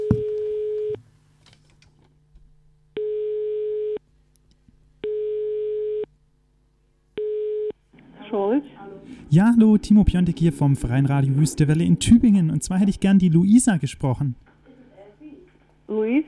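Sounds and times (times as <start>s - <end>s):
studio telephone ringing tone calling out: 0.0s - 1.0s, 3.0s - 4.0s, 5.0s - 6.1s, 7.2s - 7.8s
speech: 8.6s - 14.5s.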